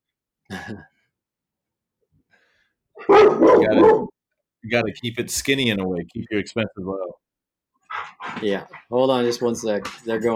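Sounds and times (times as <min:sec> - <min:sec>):
speech: 0:00.7 - 0:01.0, 0:03.1 - 0:07.2, 0:08.0 - 0:10.3
dog barking: 0:03.0 - 0:04.2.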